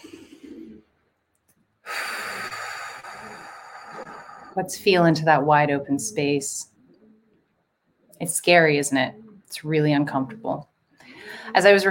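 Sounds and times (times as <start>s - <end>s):
deep breath during a guided group breathing exercise: 0.0s - 0.8s, 1.8s - 4.6s, 11.0s - 11.6s
speech: 4.6s - 6.7s, 8.2s - 10.7s, 11.5s - 11.9s.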